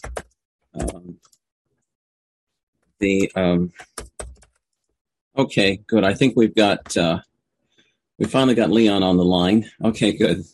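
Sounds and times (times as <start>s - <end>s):
typing on a computer keyboard: 0.0s - 1.4s, 3.2s - 4.7s
speech: 0.8s - 1.4s, 3.0s - 3.9s, 5.4s - 7.3s, 8.2s - 10.5s.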